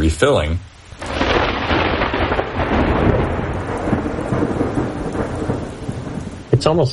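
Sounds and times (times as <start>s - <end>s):
heavy rain pouring and hitting the surface: 0.0s - 6.9s
speech: 0.1s - 0.7s, 6.6s - 6.9s
deep rolling thunder of a heavy thunderstorm: 0.8s - 6.9s.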